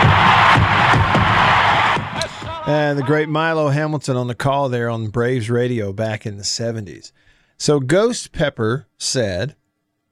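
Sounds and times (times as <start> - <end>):
huge baseball stadium crowd roaring and cheering a record home run: 0.0 - 3.1
speech: 2.7 - 9.6.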